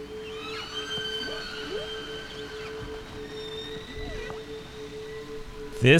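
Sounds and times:
eerie whale calls with moans and rising whoops: 0.0s - 5.8s
speech: 5.8s - 5.9s.

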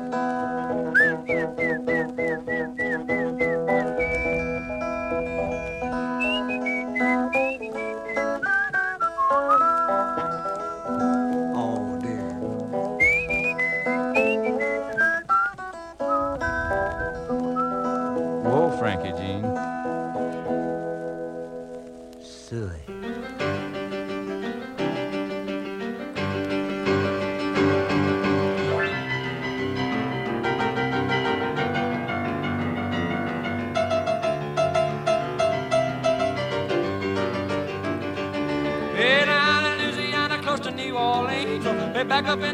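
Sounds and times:
steady instrumental music: 0.0s - 42.5s
person whistling to call an animal: 0.9s - 10.5s, 13.0s - 18.2s.

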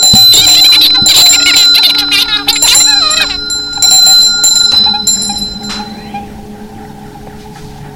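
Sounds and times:
loud bell ringing with bright metallic clanging: 0.0s - 6.3s.

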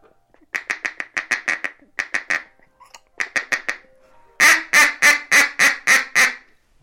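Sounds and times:
duck call blown in a feeding chuckle: 0.5s - 2.5s, 3.2s - 3.8s, 4.4s - 6.5s.

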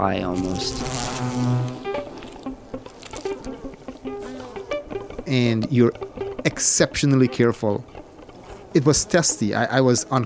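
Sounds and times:
speech: 0.0s - 1.6s, 5.3s - 8.0s, 8.7s - 10.2s
swarm of honeybees buzzing around hive frames: 0.0s - 10.2s.

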